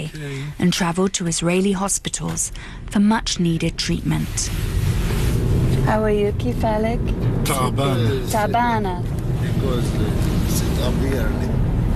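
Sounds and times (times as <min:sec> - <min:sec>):
car engine rumble while driving: 0:00.0 - 0:11.9
road noise in a car interior: 0:00.0 - 0:11.9
speech: 0:00.1 - 0:05.0, 0:05.9 - 0:11.6.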